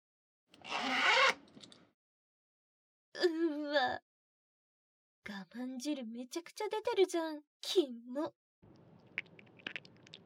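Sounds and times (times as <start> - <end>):
zipper being unzipped: 0.6 - 1.4
speech: 3.2 - 4.1, 5.3 - 8.8.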